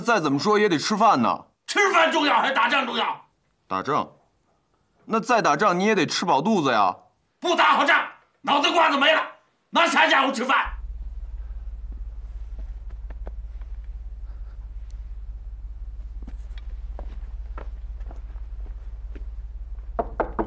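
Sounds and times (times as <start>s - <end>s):
speech: 0.0s - 4.2s, 5.1s - 10.8s
steady low hum: 10.7s - 20.4s
soft footsteps shuffling: 11.0s - 20.0s
firm knocks on a regiment commander's wooden door: 20.0s - 20.4s.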